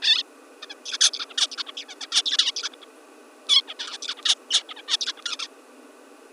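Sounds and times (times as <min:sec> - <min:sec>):
bird: 0:00.0 - 0:02.9, 0:03.5 - 0:05.5.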